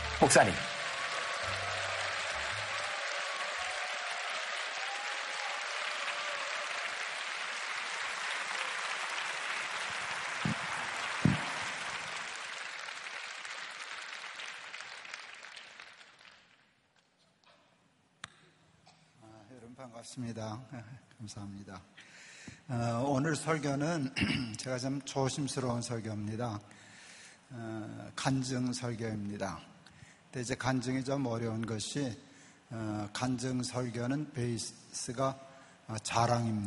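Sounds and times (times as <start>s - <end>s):
faint cheers: 0.0s - 7.4s
large crowd clapping: 0.0s - 17.1s
speech: 0.2s - 0.7s, 20.1s - 26.8s, 27.5s - 29.7s, 30.3s - 36.6s.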